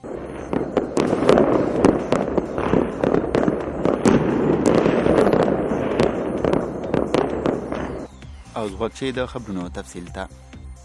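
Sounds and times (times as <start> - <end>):
celebratory gunfire shot into the air: 0.0 - 8.2
speech: 8.6 - 10.5.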